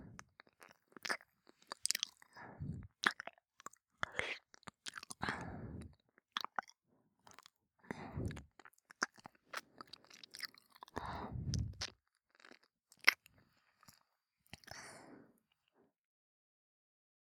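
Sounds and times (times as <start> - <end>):
wet mouth sounds of someone nibbling on an earlobe: 0.2 - 5.3, 8.2 - 13.3.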